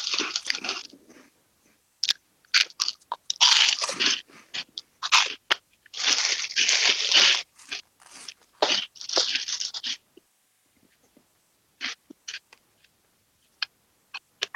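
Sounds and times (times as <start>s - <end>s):
chewing and biting spicy wine-gum style candies: 0.0s - 1.3s, 2.0s - 10.0s, 11.8s - 12.9s, 13.6s - 14.5s.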